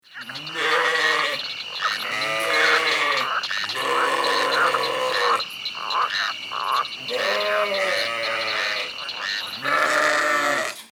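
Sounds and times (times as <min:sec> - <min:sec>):
frog croaking for a sound lotto game: 0:00.0 - 0:10.9
sheep bleating for a sound lotto game: 0:00.2 - 0:05.4, 0:07.1 - 0:08.9, 0:09.6 - 0:10.9.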